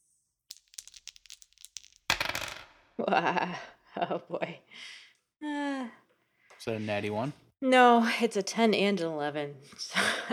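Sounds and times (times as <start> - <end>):
pair of twenty-sided dice rattling in a hand: 0.5 - 2.8
speech: 3.0 - 6.0, 6.6 - 10.3.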